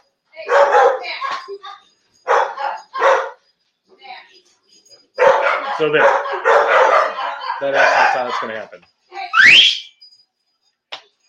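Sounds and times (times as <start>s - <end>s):
several dogs barking with sharp yips: 0.4s - 1.5s, 2.2s - 3.4s, 5.0s - 8.8s
speech: 5.8s - 6.4s, 7.6s - 9.8s.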